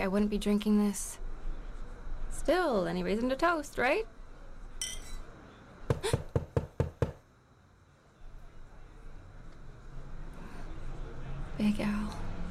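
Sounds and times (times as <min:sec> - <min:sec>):
speech: 0:00.0 - 0:01.2, 0:02.3 - 0:04.2
loud sharp knocking on a door: 0:05.9 - 0:07.2.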